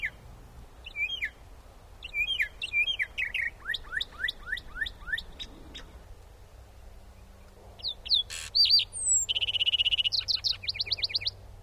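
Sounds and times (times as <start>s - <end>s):
lark sparrow singing buzzy trills and sweet chirps atop a light pole: 0.0s - 0.2s, 0.8s - 1.4s, 2.0s - 6.0s, 7.2s - 11.4s.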